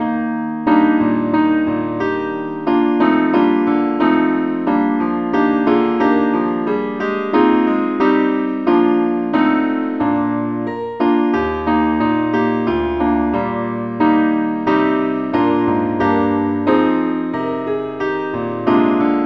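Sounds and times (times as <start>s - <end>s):
keyboard playing in E flat: 0.1s - 19.2s.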